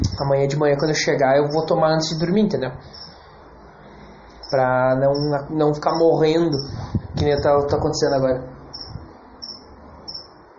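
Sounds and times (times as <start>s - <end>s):
speech: 0.2s - 3.0s, 4.5s - 8.6s
cricket chirping: 2.8s - 3.3s, 4.4s - 6.8s, 8.7s - 10.4s.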